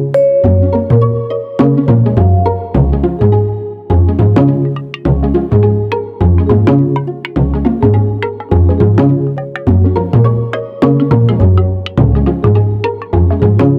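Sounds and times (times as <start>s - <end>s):
pizzicato strings: 0.1s - 3.3s, 4.5s - 13.6s.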